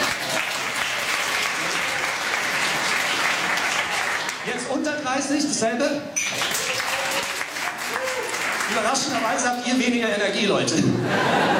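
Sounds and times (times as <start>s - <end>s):
crowd applauding: 0.0s - 4.7s, 6.2s - 9.6s
speech: 4.8s - 7.3s, 8.7s - 11.5s
laughter: 10.8s - 11.5s.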